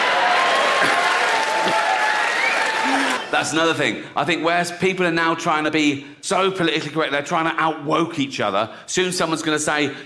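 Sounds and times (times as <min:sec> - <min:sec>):
crowd applause: 0:00.0 - 0:03.6
speech: 0:03.4 - 0:10.0.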